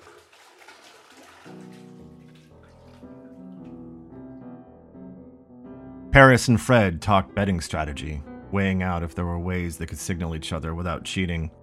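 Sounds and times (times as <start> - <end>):
fingers swishing through salty bathtub water: 0.0 - 3.6
speech: 6.2 - 11.6.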